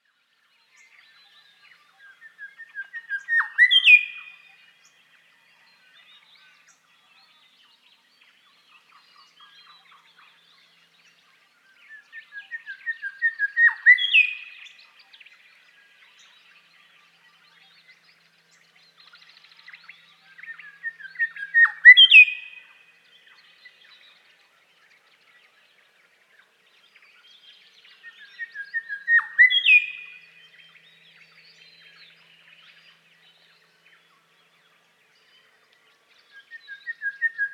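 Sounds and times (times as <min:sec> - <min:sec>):
Grey Shrikethrush Colluricincla harmonica singing: 0:00.0 - 0:37.5.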